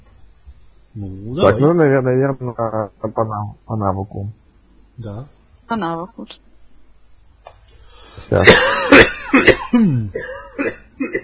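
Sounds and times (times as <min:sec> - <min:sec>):
speech: 0:01.0 - 0:04.4, 0:05.0 - 0:06.5, 0:08.2 - 0:11.2
coughing fit: 0:01.3 - 0:01.7, 0:08.3 - 0:11.2.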